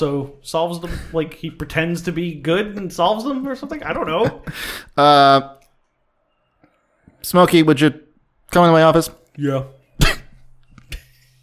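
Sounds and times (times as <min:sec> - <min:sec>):
speech: 0:00.0 - 0:05.6, 0:07.2 - 0:10.2
person clearing throat: 0:10.0 - 0:10.4.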